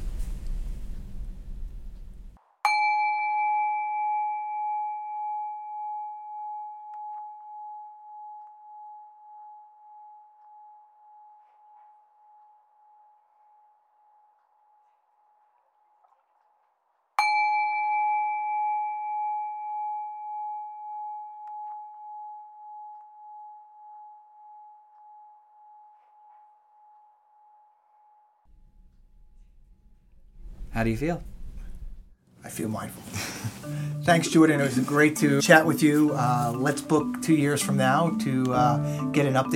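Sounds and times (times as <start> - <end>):
meditation bell ringing: 2.7 - 14.4, 17.2 - 28.5
speech: 30.8 - 31.3, 32.5 - 39.5.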